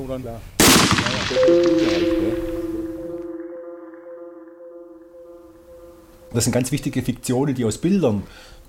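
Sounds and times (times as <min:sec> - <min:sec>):
speech: 0:00.0 - 0:02.5, 0:06.3 - 0:08.6
rifle shot fired to test ammunition: 0:00.6 - 0:02.0
sustained metallic ringing tone: 0:01.1 - 0:07.6.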